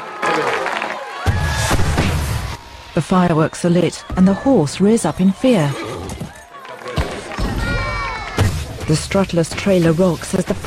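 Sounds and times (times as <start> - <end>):
crowd cheering and applauding at an event: 0.0 - 8.4
speech: 0.4 - 0.6, 3.0 - 5.9, 8.9 - 10.6.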